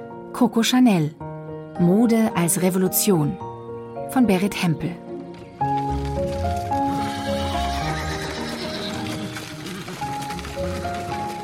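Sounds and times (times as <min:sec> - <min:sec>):
speech: 0:00.4 - 0:01.2, 0:01.8 - 0:03.5, 0:04.1 - 0:05.0
horse hooves clip-clopping on a bumpy path: 0:05.2 - 0:11.4
horse-drawn wooden cart rumbling along a bumpy path in southern France: 0:05.7 - 0:11.4
horse whinnying: 0:06.7 - 0:11.4.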